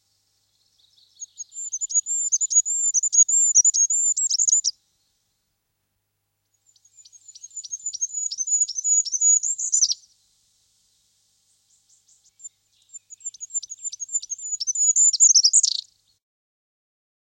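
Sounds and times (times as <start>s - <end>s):
Goldcrest very high-pitched song: 0.8s - 4.7s, 6.7s - 10.0s, 11.9s - 15.9s.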